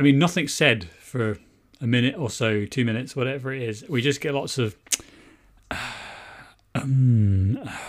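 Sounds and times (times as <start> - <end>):
speech: 0.0 - 5.1, 5.7 - 5.9, 6.8 - 7.8
voice imitating heavy breathing and mouth noises: 5.0 - 7.8
loud voiced groaning breath: 5.7 - 7.8.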